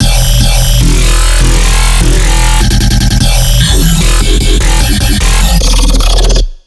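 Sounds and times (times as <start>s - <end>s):
dubstep bass loop: 0.0s - 6.4s.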